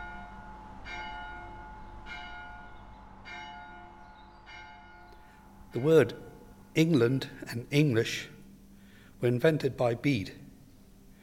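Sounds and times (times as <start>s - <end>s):
church bell tolling: 0.0s - 6.7s
speech: 5.7s - 8.3s, 9.2s - 10.4s.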